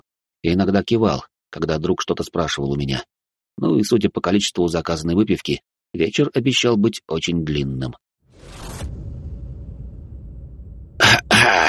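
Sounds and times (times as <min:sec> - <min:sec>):
speech: 0:00.4 - 0:08.6
man coughing: 0:11.0 - 0:11.6.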